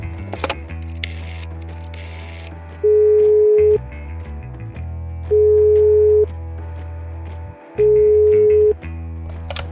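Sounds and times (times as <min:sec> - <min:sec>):
loud steady telephone ringback tones: 0:02.8 - 0:03.8, 0:05.3 - 0:06.3, 0:07.8 - 0:08.8.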